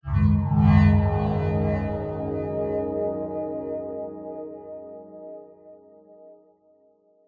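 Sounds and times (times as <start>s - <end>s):
warm science fiction style multimedia logo swell: 0.1s - 4.3s.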